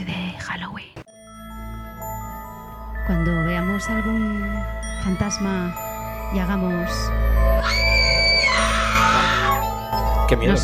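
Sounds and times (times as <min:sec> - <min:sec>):
speech: 0:03.1 - 0:09.6, 0:10.3 - 0:10.6
person screaming in fright: 0:07.6 - 0:10.0.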